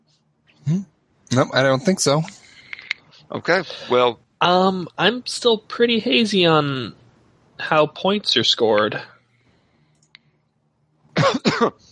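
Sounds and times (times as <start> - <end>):
speech: 0.7 - 2.4, 3.3 - 7.0, 7.6 - 9.1, 11.2 - 11.9
broad raspy coughs: 11.2 - 11.8.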